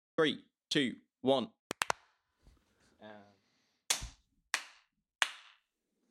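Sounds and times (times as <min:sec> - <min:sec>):
speech: 0:00.2 - 0:01.6
synchronized hand claps: 0:01.7 - 0:02.1, 0:03.9 - 0:05.7.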